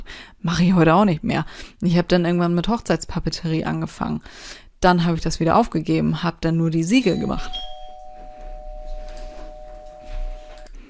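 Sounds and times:
speech: 0.4s - 7.7s
electronic doorbell ringing indoors: 7.1s - 10.7s.

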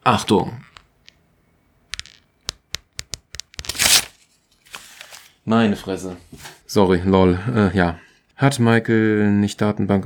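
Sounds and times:
speech: 0.0s - 0.7s, 5.5s - 10.0s
sheets of paper being torn while tidying up: 3.6s - 5.3s.

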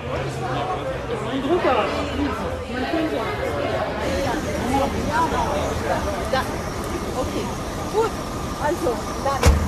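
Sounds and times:
crowd chatter: 0.0s - 9.6s
bus engine idling: 3.8s - 9.6s.

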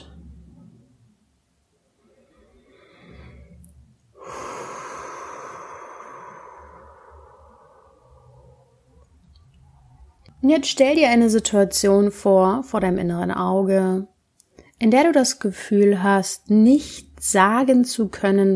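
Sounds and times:
deep inhalation during a guided breathing and relaxation exercise: 2.0s - 9.0s
speech: 10.4s - 14.1s, 14.8s - 18.5s.

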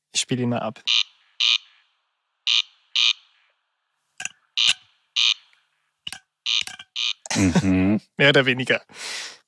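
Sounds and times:
speech: 0.2s - 1.6s, 7.4s - 9.4s
corncrake rasping double call: 0.8s - 3.6s, 4.3s - 7.3s
sharp clicks: 5.5s - 7.3s.

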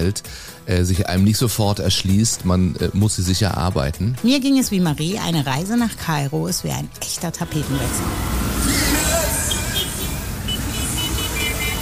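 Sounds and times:
speech: 0.0s - 8.9s
dense city traffic in Cairo with motorcycles and vans rumbling: 4.7s - 11.8s
indistinct voices in a busy street: 7.2s - 10.0s
short car horn toots: 8.7s - 11.8s.

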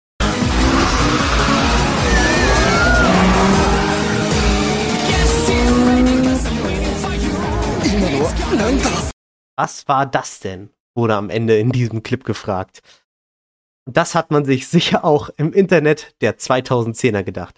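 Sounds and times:
racing car engine drone in an anime film scene: 0.2s - 8.2s
drifting car tyre screeches: 0.6s - 4.3s
speech: 9.6s - 13.0s, 13.8s - 17.5s.

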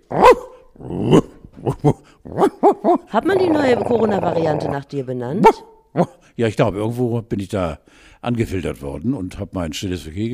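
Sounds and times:
person imitating a barking dog: 0.1s - 6.2s
speech: 1.8s - 10.3s.

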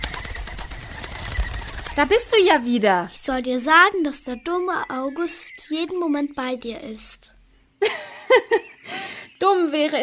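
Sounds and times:
dove cooing: 0.0s - 2.7s
speech: 2.0s - 10.0s
laughter: 7.8s - 8.7s.

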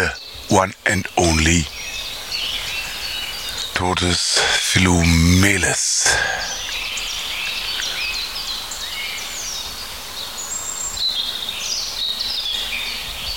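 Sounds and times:
speech: 0.0s - 1.8s, 3.8s - 6.6s
dense chorus of other birdsong: 0.0s - 5.6s, 6.2s - 13.3s
European robin singing warbling phrases and trills: 0.0s - 9.8s.

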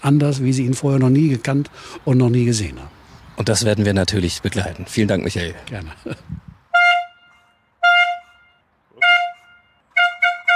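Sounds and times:
speech: 0.0s - 6.5s
hand horn blasts signalling the start: 6.7s - 10.5s.

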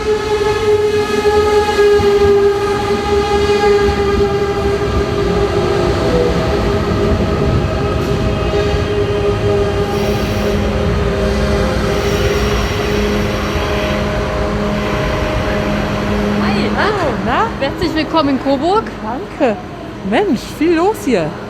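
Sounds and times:
ICE high-speed train rolling at a station: 0.0s - 18.5s
whining electric tones of ICE high-speed train: 9.8s - 15.0s
speech: 18.1s - 21.4s.

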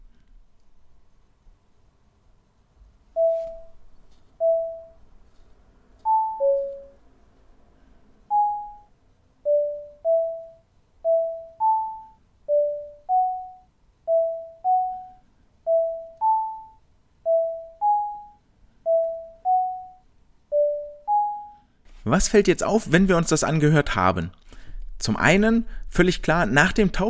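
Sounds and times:
short clear electronic tones sonifying a breaststroke swimming rhythm: 3.2s - 3.8s, 4.4s - 5.0s, 6.1s - 7.0s, 8.3s - 21.7s
speech: 22.1s - 24.4s, 25.0s - 27.0s.

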